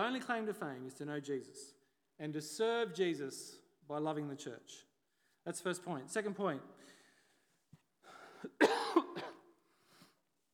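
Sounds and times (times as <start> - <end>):
speech: 0.0 - 7.0
dry coughing from a lingering cough after COVID: 8.3 - 9.5.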